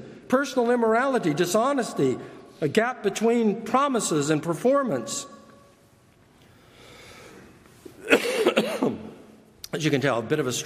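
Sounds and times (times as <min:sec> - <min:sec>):
speech: 0:00.3 - 0:05.4, 0:09.7 - 0:10.6
person coughing: 0:08.0 - 0:09.2.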